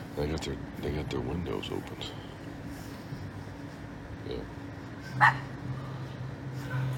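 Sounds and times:
low steady hum: 0.0s - 6.9s
speech: 0.2s - 2.3s, 4.3s - 4.6s, 5.2s - 5.5s
dog barking: 5.2s - 5.5s.

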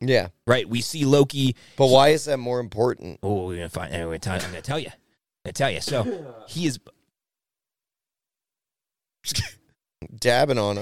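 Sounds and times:
speech: 0.0s - 7.0s, 9.2s - 10.8s
sneeze: 5.9s - 6.6s.

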